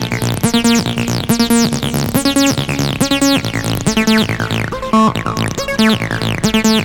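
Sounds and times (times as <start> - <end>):
303 bass synth loop: 0.0 - 6.8.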